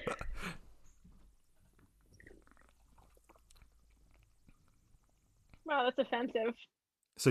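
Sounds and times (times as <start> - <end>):
speech: 0.1 - 0.6, 5.8 - 7.2
faint swallowing of seltzer: 1.6 - 5.6
fizzy slurp of blackberry-flavored seltzer from a can: 2.0 - 5.3.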